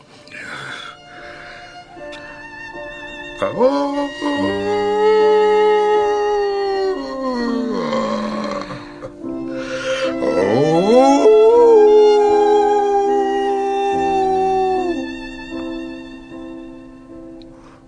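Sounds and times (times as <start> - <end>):
speech: 3.4 - 4.0
man hiding in the forest imitating a wolf howl: 3.4 - 8.8, 10.2 - 15.1.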